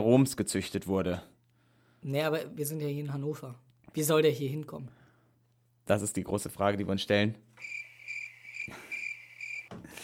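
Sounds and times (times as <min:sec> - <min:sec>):
speech: 0:00.0 - 0:01.3, 0:02.0 - 0:05.0, 0:05.9 - 0:07.8
cricket chirping: 0:07.6 - 0:10.0.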